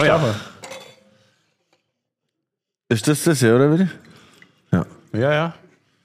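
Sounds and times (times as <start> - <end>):
speech: 0.0 - 0.5, 2.9 - 4.1, 4.7 - 5.6
wine glasses clinking in a toast: 0.0 - 1.2.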